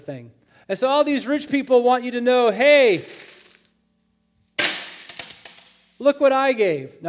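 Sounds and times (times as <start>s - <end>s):
speech: 0.0s - 3.3s, 6.0s - 7.0s
coins dropping into a coin jug: 2.9s - 3.7s, 4.5s - 6.0s.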